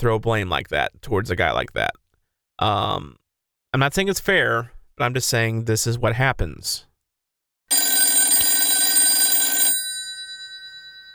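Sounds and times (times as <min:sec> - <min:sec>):
speech: 0:00.0 - 0:02.0, 0:02.6 - 0:06.9
telephone electric bell ringing for an incoming call: 0:07.7 - 0:11.1.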